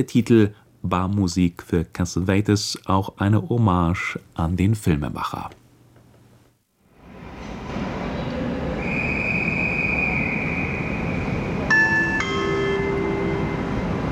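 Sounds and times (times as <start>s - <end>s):
speech: 0.0s - 5.6s
high train whine: 6.9s - 14.1s
Intercity Express train rumble at a station platform: 7.0s - 14.1s
ringing tone cluster: 11.7s - 14.1s.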